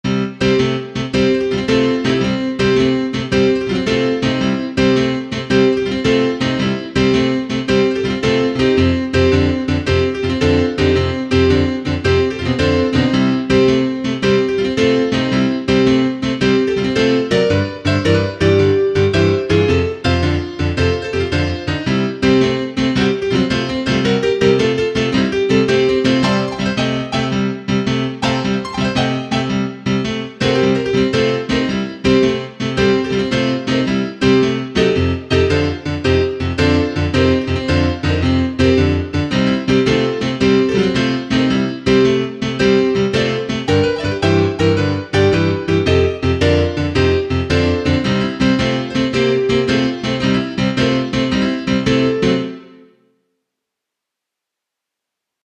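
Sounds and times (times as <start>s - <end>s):
GM piano with wet effect: 0.0s - 53.2s.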